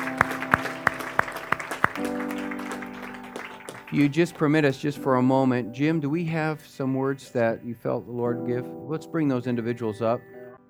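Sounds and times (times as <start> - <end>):
audience clapping in steady rhythm: 0.0 - 5.1
sustained organ-like tones: 0.0 - 10.6
speech: 3.9 - 10.4.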